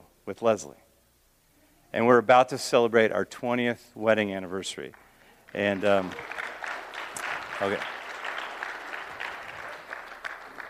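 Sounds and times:
speech: 0.3 - 0.9, 1.9 - 6.4, 7.6 - 7.9
audience applause: 4.9 - 10.6.

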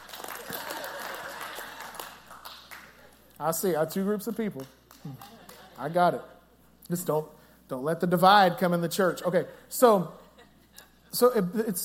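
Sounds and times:
church congregation clapping: 0.0 - 3.3, 4.4 - 5.8
speech: 3.4 - 6.3, 6.9 - 10.2, 11.1 - 11.8.

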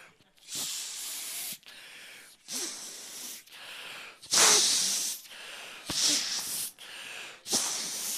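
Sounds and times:
person blowing up an inflatable by mouth: 0.4 - 1.6, 2.5 - 3.4, 4.3 - 5.2, 5.9 - 6.8, 7.4 - 8.1.

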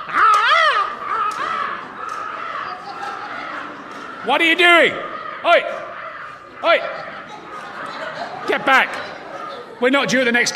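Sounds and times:
raven cawing: 0.0 - 4.2, 4.8 - 8.0
laughter: 0.0 - 10.5
speech: 4.2 - 5.9, 6.6 - 7.1, 8.5 - 9.0, 9.8 - 10.5.

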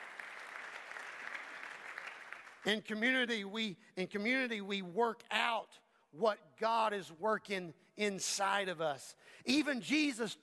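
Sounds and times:
crowd clapping: 0.0 - 2.7
speech: 2.6 - 10.4.

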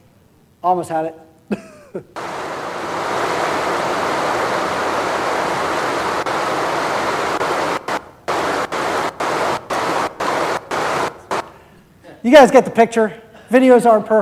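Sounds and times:
speech: 0.6 - 2.4, 12.2 - 14.1
creek water running: 2.2 - 11.1.

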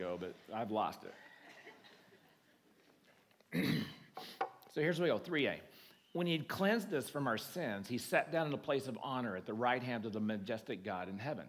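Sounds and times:
speech: 0.0 - 1.3, 3.5 - 3.8, 4.8 - 11.4
audience member clearing throat: 3.5 - 4.2.

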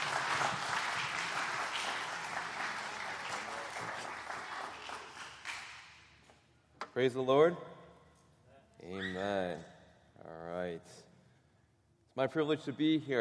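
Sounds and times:
church audience applauding for arriving speaker: 0.0 - 5.9
speech: 7.0 - 7.7, 8.9 - 9.7, 10.6 - 11.1, 12.2 - 13.1.

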